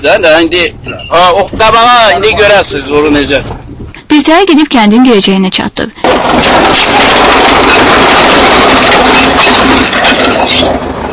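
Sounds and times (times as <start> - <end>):
speech: 0.0 - 3.6, 4.2 - 11.0
tractor engine roaring while clearing a road: 6.0 - 11.1.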